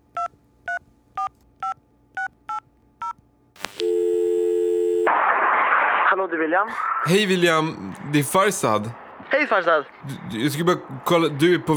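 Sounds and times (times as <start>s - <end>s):
telephone keypad dialing beeps: 0.2s - 5.1s
click: 3.6s - 3.9s
speech: 6.2s - 11.7s.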